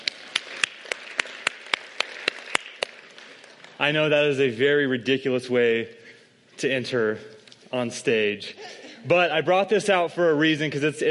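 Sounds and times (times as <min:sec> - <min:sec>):
one set of hands clapping steadily: 0:00.0 - 0:03.9
speech: 0:03.8 - 0:06.0, 0:06.6 - 0:11.0.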